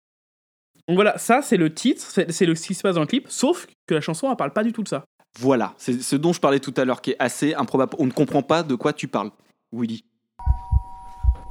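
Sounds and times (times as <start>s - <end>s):
speech: 0.8s - 10.6s
doorbell with sustained electronic tone: 10.4s - 11.4s.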